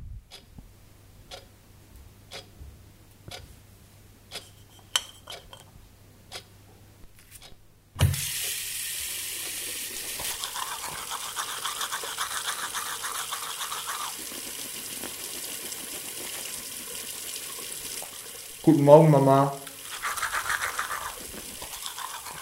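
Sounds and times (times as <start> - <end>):
water tap running: 8.0 - 22.4
toothbrush scrubbing teeth: 10.0 - 17.1, 19.7 - 22.4
speech: 18.6 - 19.6.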